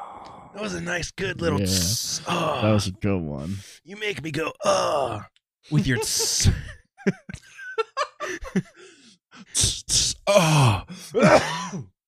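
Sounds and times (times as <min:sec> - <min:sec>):
breathy sounds: 0:00.0 - 0:00.6, 0:01.5 - 0:03.8, 0:04.6 - 0:05.3, 0:08.2 - 0:11.4
strained groaning vocal noises: 0:00.0 - 0:00.6, 0:01.4 - 0:03.6, 0:04.6 - 0:05.4, 0:09.5 - 0:11.4
speech: 0:00.5 - 0:07.6, 0:08.3 - 0:08.8, 0:09.4 - 0:11.9
laughter: 0:05.7 - 0:08.8
person sneezing: 0:11.2 - 0:11.9.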